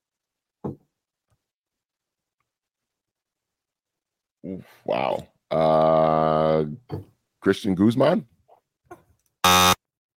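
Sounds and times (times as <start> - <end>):
speech: 4.5 - 8.3
harsh wrong-answer buzzer: 9.4 - 9.9.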